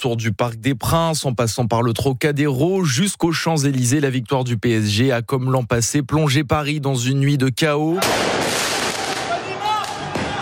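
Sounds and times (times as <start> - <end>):
speech: 0.0 - 8.6
firework mortar shots crackling and whistling during street unrest: 8.0 - 10.3
dense loud roar of crowd noise during street unrest after a football victory: 9.0 - 10.3.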